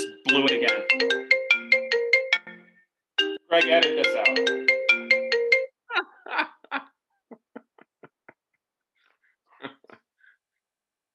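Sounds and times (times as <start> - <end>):
cell phone ringtone with bright electronic notes: 0.0 - 5.8
speech: 0.3 - 1.4, 3.5 - 4.7.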